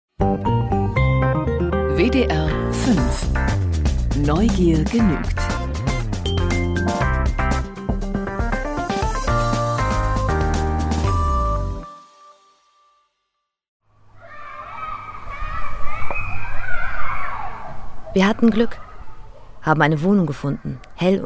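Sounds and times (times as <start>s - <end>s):
music: 0.1s - 13.6s
speech: 2.0s - 3.6s, 4.2s - 5.5s, 18.2s - 18.8s, 19.6s - 21.2s
children playing in a garden and shouting in a stairwell: 14.1s - 19.6s.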